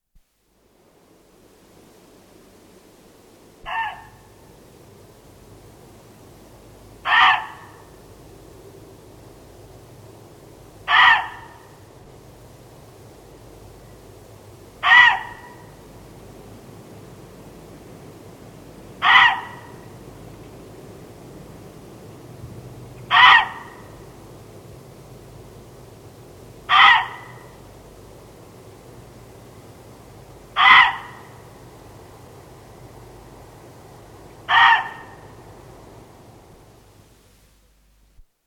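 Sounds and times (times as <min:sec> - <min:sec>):
muntjac deer: 0:03.6 - 0:04.4, 0:07.0 - 0:08.0, 0:10.8 - 0:11.8, 0:14.8 - 0:15.8, 0:19.0 - 0:20.5, 0:23.0 - 0:24.2, 0:26.6 - 0:27.6, 0:30.5 - 0:31.6, 0:34.3 - 0:35.4.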